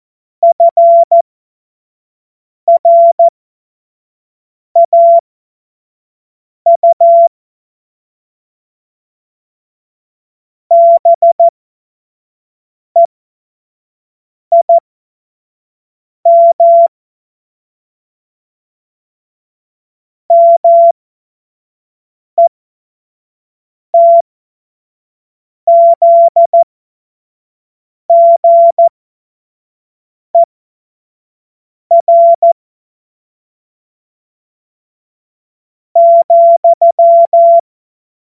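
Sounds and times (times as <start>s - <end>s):
morse code beeps: 0.5s - 1.2s, 2.7s - 3.3s, 4.8s - 5.2s, 6.7s - 7.3s, 10.7s - 11.5s, 14.5s - 14.8s, 16.3s - 16.9s, 20.3s - 21.0s, 24.0s - 24.2s, 25.7s - 26.6s, 28.1s - 28.9s, 31.9s - 32.6s, 36.0s - 37.6s.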